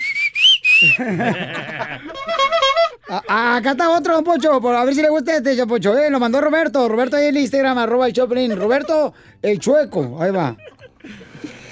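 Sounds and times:
shrill human whistle blasts: 0:00.0 - 0:01.0
laughter: 0:00.8 - 0:04.0, 0:08.1 - 0:09.1, 0:10.2 - 0:11.7
speech: 0:00.8 - 0:11.3.

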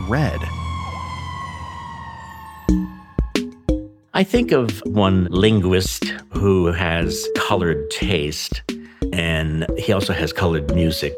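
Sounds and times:
fire truck siren: 0:00.0 - 0:03.9
speech: 0:00.1 - 0:00.6, 0:02.7 - 0:03.0, 0:04.2 - 0:11.1.

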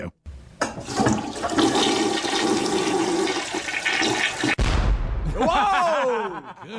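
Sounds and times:
toilet water rushing from high water pressure: 0:00.6 - 0:04.6
toilet bursting with a sharp bang: 0:04.6 - 0:05.4
laughter: 0:05.2 - 0:06.7
speech: 0:06.4 - 0:06.7.

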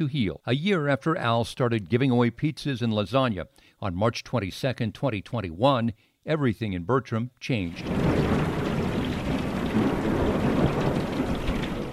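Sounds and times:
speech: 0:00.0 - 0:08.3
deep thunder rumbling: 0:07.7 - 0:11.9
heavy rain: 0:07.7 - 0:11.9.

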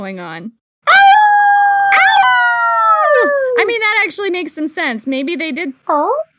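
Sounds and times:
speech: 0:00.0 - 0:00.6, 0:03.2 - 0:06.3
voice imitating a werewolf howl: 0:00.9 - 0:03.7.

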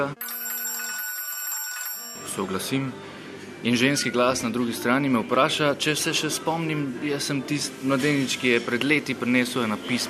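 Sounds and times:
speech: 0:00.0 - 0:00.4, 0:02.2 - 0:10.0
telephone ringing with electronic tone: 0:00.0 - 0:02.8.

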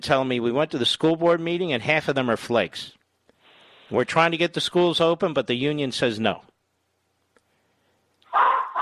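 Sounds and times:
speech: 0:00.0 - 0:03.0, 0:03.9 - 0:06.5
Maltese poodle dog barking: 0:08.3 - 0:08.8.

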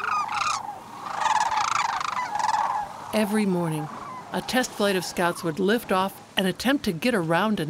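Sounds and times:
sandhill cranes calling at the Copper River Delta during migration: 0:00.0 - 0:05.4
speech: 0:03.1 - 0:07.6.

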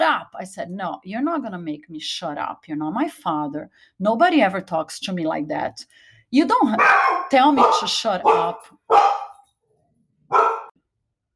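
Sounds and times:
speech: 0:00.1 - 0:09.1
dog on a leash barking: 0:06.8 - 0:09.4, 0:10.3 - 0:10.8.

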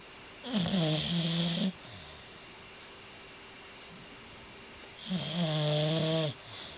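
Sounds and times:
dog snoring deep and low: 0:00.4 - 0:02.4, 0:05.0 - 0:06.7.

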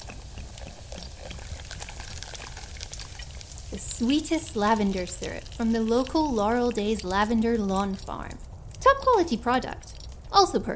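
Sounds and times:
fizzy mineral water pouring into a glass: 0:00.0 - 0:08.1
speech: 0:03.7 - 0:08.5, 0:09.1 - 0:10.7.

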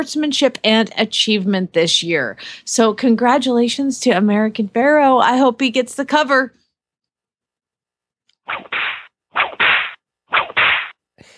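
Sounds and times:
speech: 0:00.0 - 0:06.6
whip cracks: 0:08.5 - 0:11.0.

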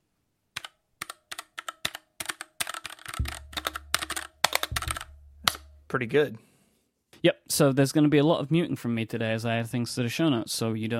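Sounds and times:
typing on a mechanical keyboard: 0:00.6 - 0:05.7
low steady hum: 0:03.2 - 0:06.0
speech: 0:05.9 - 0:06.5, 0:07.2 - 0:10.9.

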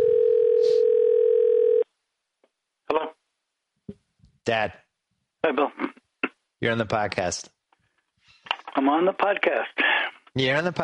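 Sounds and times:
telephone dial tone as a phone call is placed: 0:00.0 - 0:01.8
speech: 0:04.5 - 0:04.8, 0:05.4 - 0:06.0, 0:06.6 - 0:07.6, 0:08.8 - 0:10.8.

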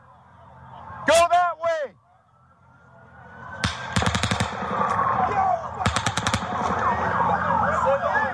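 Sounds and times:
wailing sirens: 0:00.0 - 0:08.3
rapid bursts of gunfire from a window: 0:03.6 - 0:05.2, 0:05.8 - 0:07.2.

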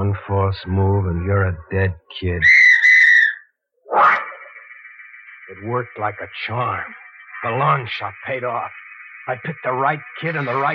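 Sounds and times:
speech: 0:00.0 - 0:02.6, 0:05.5 - 0:10.7
traffic cop's whistle blowing on a street: 0:02.4 - 0:04.7.

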